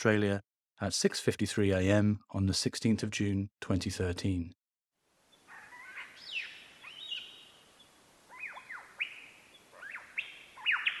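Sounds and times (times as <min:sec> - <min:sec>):
speech: 0:00.0 - 0:04.6
soft steady background hiss: 0:05.0 - 0:10.6
Superb Lyrebird mimicry song in a state forest in Victoria, Australia: 0:05.3 - 0:10.9.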